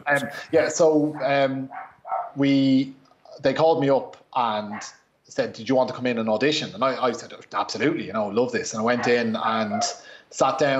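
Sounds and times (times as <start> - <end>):
speech: 0.1 - 10.7
female dog barking excitedly at a door knock: 1.2 - 2.4, 9.0 - 10.0.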